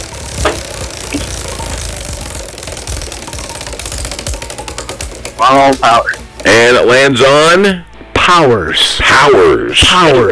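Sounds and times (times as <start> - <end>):
prize wheel pointer clacking against pegs: 0.0 - 7.5
speech: 5.5 - 10.3.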